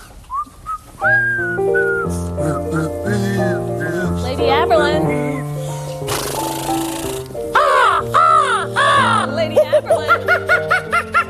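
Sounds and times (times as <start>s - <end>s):
person whistling a melody: 0.3s - 5.9s
speech: 1.0s - 1.3s
steady harmonic accompaniment: 1.0s - 11.2s
laughter: 9.0s - 11.2s.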